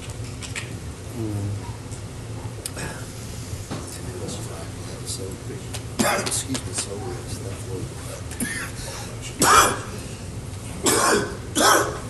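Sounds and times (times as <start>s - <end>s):
low hum: 0.0s - 12.0s
faint murmuring: 1.1s - 10.8s
harsh coughs: 6.0s - 6.3s, 8.3s - 10.0s, 10.8s - 12.0s.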